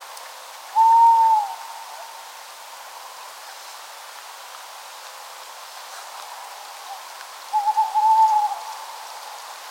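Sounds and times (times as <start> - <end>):
Tawny Owl: 0.7 - 2.2, 6.8 - 9.2.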